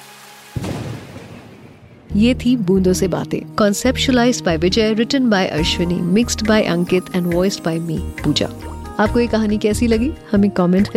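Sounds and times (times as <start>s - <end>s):
thunder rumbling: 0.6s - 3.1s
speech: 2.1s - 10.9s.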